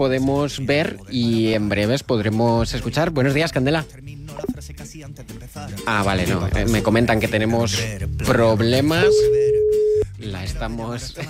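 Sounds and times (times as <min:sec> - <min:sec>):
speech: 0:00.0 - 0:04.2, 0:05.0 - 0:09.5, 0:10.2 - 0:11.2
telephone ringing tone while placing a call: 0:09.0 - 0:10.0.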